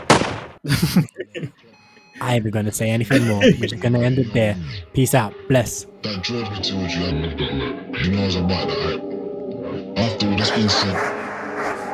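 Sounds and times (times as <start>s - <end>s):
gunshots with tail: 0.0s - 0.6s
speech: 0.6s - 9.1s, 10.0s - 11.2s
laughter: 0.7s - 4.6s.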